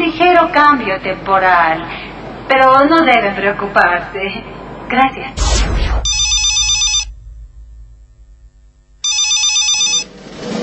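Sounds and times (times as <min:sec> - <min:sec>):
speech: 0:00.4 - 0:06.2
low hum: 0:05.3 - 0:10.6
telephone ringing with electronic trilling: 0:06.1 - 0:07.1, 0:09.0 - 0:10.1.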